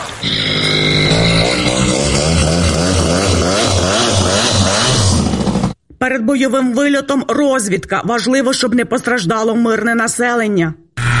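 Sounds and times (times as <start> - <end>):
attack drone engine running with propeller spinning: 0.2 - 5.7
speech: 6.3 - 11.1.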